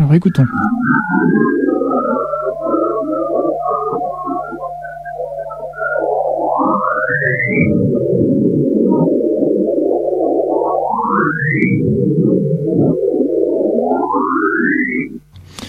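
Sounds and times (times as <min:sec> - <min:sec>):
sonified Saturn radio emission warbling electronic drone: 0:00.0 - 0:15.6
speech: 0:00.1 - 0:03.2, 0:07.1 - 0:09.2, 0:11.5 - 0:13.0
upward-sweeping whistles of sonified Saturn radio emission: 0:00.6 - 0:07.8, 0:10.7 - 0:11.8, 0:13.8 - 0:15.2.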